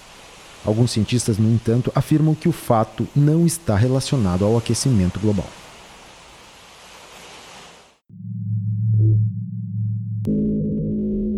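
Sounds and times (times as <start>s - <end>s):
speech: 0.6s - 5.6s
low humming drone of Antarctic ice recorded by seismic sensors: 8.1s - 11.3s.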